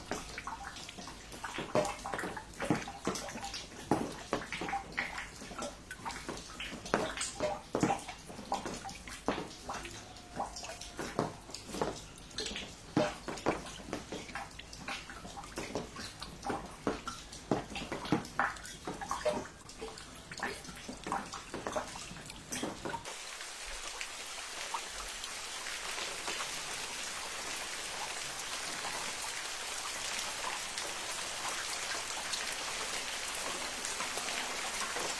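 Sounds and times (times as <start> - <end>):
soft steady patter: 0.0 - 35.1
water from a rain leak dripping and splashing: 0.0 - 35.1
dense even hiss of falling water: 23.0 - 35.1.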